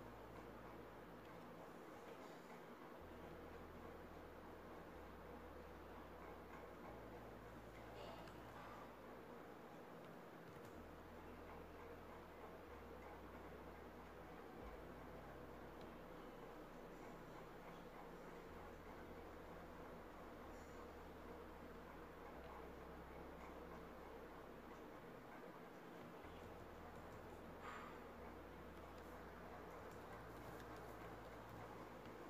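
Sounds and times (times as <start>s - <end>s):
dense warm rumble in a home: 0.0s - 32.2s.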